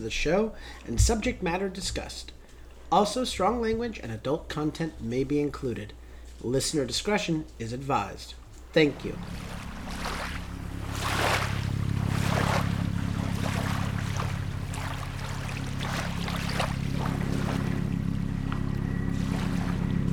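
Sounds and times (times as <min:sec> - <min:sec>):
speech: 0:00.0 - 0:09.7
helicopter flying overhead: 0:08.9 - 0:20.1.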